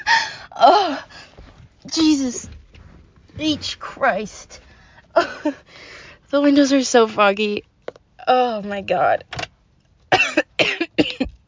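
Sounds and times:
speech: 2.0s - 2.6s, 3.4s - 4.6s, 5.4s - 5.7s, 6.3s - 7.7s, 8.3s - 9.4s
harsh coughs with double bursts: 10.1s - 11.3s.

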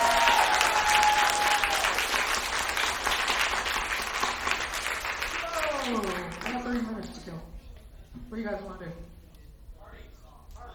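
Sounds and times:
audience applause: 0.0s - 6.9s.

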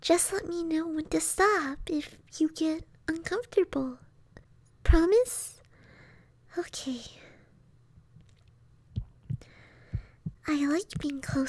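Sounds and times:
speech: 0.0s - 4.0s, 4.8s - 5.6s, 6.5s - 7.2s, 10.4s - 11.4s
faint hum: 0.0s - 11.4s
heartbeat thumps: 8.9s - 11.4s.

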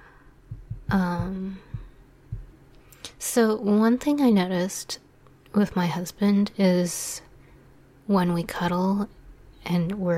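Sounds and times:
heartbeat thumps: 0.4s - 2.6s
speech: 0.9s - 1.7s, 3.2s - 7.3s, 8.1s - 10.1s.

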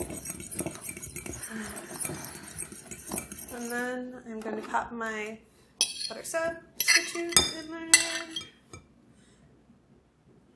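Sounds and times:
fork whisking ingredients with salt in a dish: 0.0s - 3.9s, 5.8s - 8.6s
speech: 3.7s - 5.5s, 6.1s - 8.5s.

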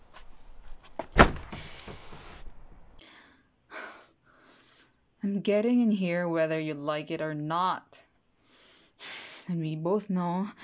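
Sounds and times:
rattling rustle: 0.0s - 3.0s
door slamming shut: 1.0s - 2.5s
speech: 5.4s - 8.0s, 9.5s - 10.6s.

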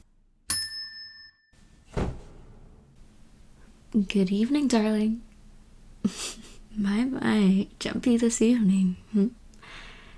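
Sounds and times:
counter bell tapped at a confectionery shop counter: 0.5s - 1.4s
low rustling: 1.6s - 3.1s
soft thump: 1.9s - 2.7s
speech: 3.9s - 5.3s, 6.0s - 9.8s.

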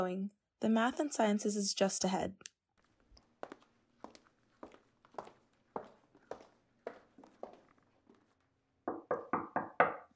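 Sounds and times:
speech: 0.0s - 2.5s
footsteps: 2.8s - 8.6s
loud sharp knocks on a door: 8.9s - 10.1s.

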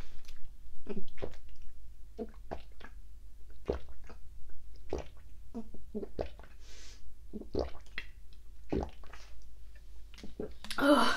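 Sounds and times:
person gulping down a bottle of water: 0.2s - 4.2s, 4.8s - 6.6s, 7.3s - 9.4s, 10.1s - 11.0s
speech: 0.9s - 1.4s, 2.2s - 2.4s.

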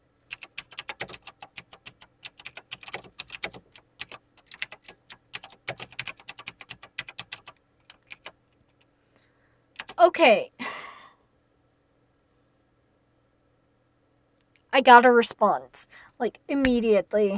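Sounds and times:
typing on a computer keyboard: 0.2s - 8.9s, 9.8s - 10.0s
speech: 10.1s - 10.5s, 14.8s - 17.3s.

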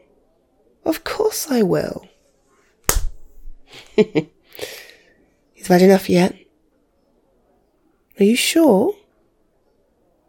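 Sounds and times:
speech: 0.8s - 2.1s, 4.0s - 4.4s, 5.6s - 6.4s, 8.2s - 9.0s
slap to the face: 2.8s - 3.5s.

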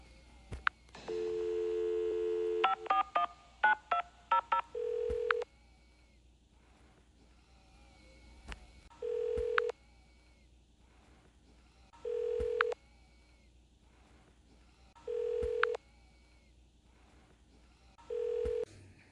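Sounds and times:
phone dial tone: 1.1s - 5.4s, 9.0s - 9.7s, 12.0s - 12.8s, 15.1s - 15.8s, 18.0s - 18.7s.

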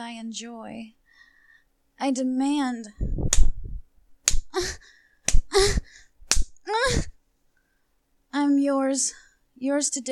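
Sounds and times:
speech: 0.1s - 1.0s, 2.0s - 3.5s, 4.6s - 5.0s, 8.4s - 10.1s
hand slapping skin: 3.2s - 6.6s
person gasping or moaning: 4.4s - 7.2s.

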